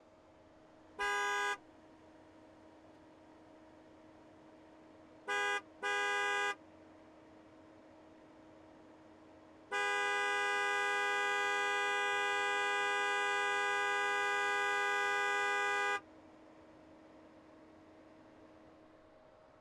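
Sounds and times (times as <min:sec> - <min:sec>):
2016 Corvette C7 Z06 horn: 0:01.0 - 0:01.6, 0:05.3 - 0:06.6, 0:09.7 - 0:16.0.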